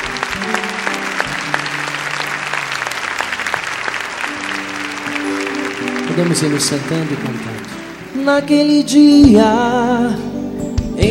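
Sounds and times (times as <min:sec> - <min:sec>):
applause from a congregation at a Catholic Mass after the Gospel reading: 0:00.0 - 0:08.4
speech: 0:06.2 - 0:07.6, 0:08.2 - 0:10.2.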